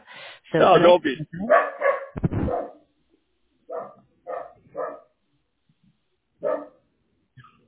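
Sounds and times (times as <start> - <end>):
speech: 0.5 - 2.2
dog barking at a delivery arriving: 1.4 - 2.9, 3.7 - 5.2, 6.4 - 6.9
dog yipping: 1.5 - 2.8, 3.7 - 5.1, 6.4 - 6.8.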